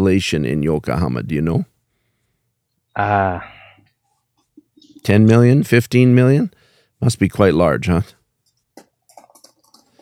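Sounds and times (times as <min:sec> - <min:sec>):
speech: 0:00.0 - 0:01.7, 0:03.0 - 0:03.6, 0:05.0 - 0:08.2
computer keyboard typing: 0:08.4 - 0:09.9.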